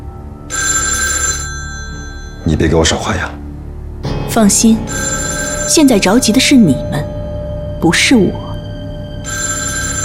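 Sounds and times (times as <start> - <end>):
telephone bell ringing: 0.5 - 2.4, 4.9 - 6.4, 9.2 - 10.0
speech: 2.5 - 3.4, 4.4 - 7.1, 7.8 - 8.4.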